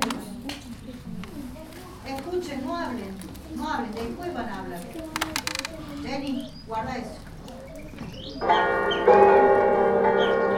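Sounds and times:
children's voices in a school setting: 0.0s - 8.8s
speech: 2.7s - 5.4s, 6.0s - 7.2s, 8.4s - 9.2s
bells ringing in a school setting: 8.4s - 10.5s.

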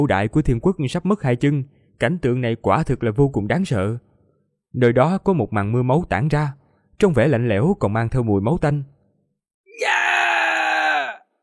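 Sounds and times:
speech: 0.0s - 4.1s, 4.7s - 9.0s
man shouting loudly in a harsh yell: 9.7s - 11.2s.

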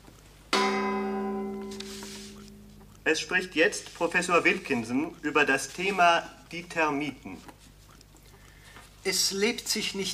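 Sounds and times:
radio time signal gong stroke: 0.5s - 2.8s
speech: 3.1s - 7.6s, 9.0s - 10.1s.

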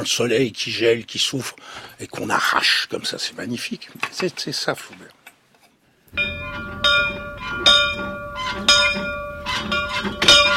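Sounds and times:
speech: 0.0s - 5.2s, 6.1s - 6.8s
old bell from a family's dwelling house rung by hand: 6.2s - 10.5s.

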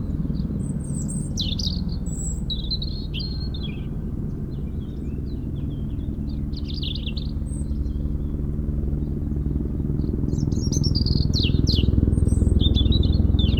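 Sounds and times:
helicopter rumbling during lifting work for cliff repairs: 0.0s - 13.5s
European robin singing in a hedge: 0.4s - 4.0s, 4.6s - 7.8s, 10.2s - 13.5s.

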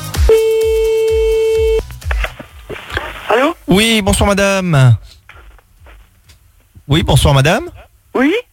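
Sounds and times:
telephone ringing tone on a call: 0.3s - 1.8s
speech: 3.7s - 5.2s, 6.9s - 8.5s.

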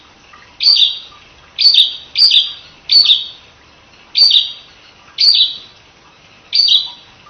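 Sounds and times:
prinia singing chirpy bursts: 0.6s - 3.4s, 4.2s - 5.7s, 6.5s - 7.1s.

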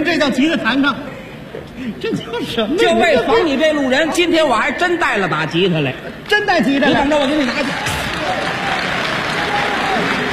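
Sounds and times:
speech: 0.2s - 1.1s, 1.8s - 8.4s
audience applauding at a live comedy stage show: 7.2s - 10.3s.

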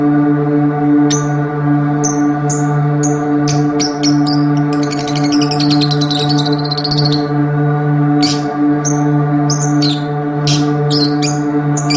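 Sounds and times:
steady low hum: 0.0s - 11.9s
Oriental magpie-robin song with chattering notes, rasps and whistles: 1.1s - 1.4s, 2.0s - 7.4s, 8.2s - 11.9s.

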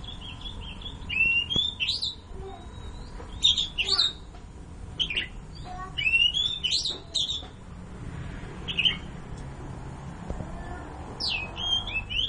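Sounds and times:
long-tailed shrike singing: 0.0s - 4.3s, 4.9s - 7.6s, 8.7s - 9.2s, 10.6s - 12.2s.

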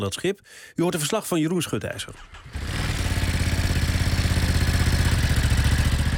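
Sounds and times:
speech: 0.0s - 3.0s
running engine of the kind shipped as cargo on a container ship throbbing: 2.3s - 6.1s.

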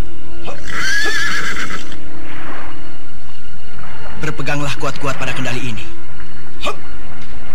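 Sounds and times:
dense noisy background: 0.0s - 7.5s
horse being ridden neighing: 0.5s - 2.0s
speech: 4.3s - 6.0s, 6.6s - 6.9s.

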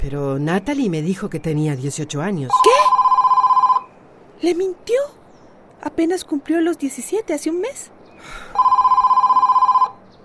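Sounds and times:
speech: 0.0s - 3.0s, 4.4s - 5.2s, 5.8s - 8.7s
telephone ringing with warbling electronic trill: 2.5s - 3.9s, 8.6s - 10.0s.

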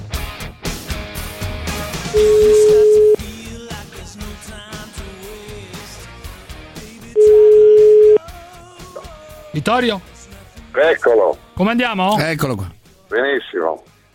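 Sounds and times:
speech: 2.1s - 2.4s, 9.6s - 10.1s, 10.8s - 13.9s
telephone line tone while placing a call: 2.2s - 3.2s, 7.2s - 8.2s.

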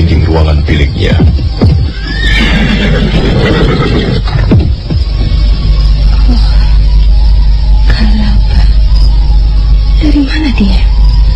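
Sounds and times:
low rumble: 0.0s - 11.3s
speech: 0.4s - 1.7s
horse hoofbeats approaching: 1.1s - 5.4s
horse whinny: 1.9s - 4.5s.

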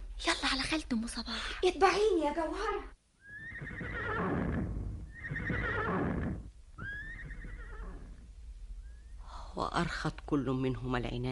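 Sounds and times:
speech: 0.7s - 3.0s, 9.6s - 11.2s
galloping horse neighing: 3.2s - 8.2s.

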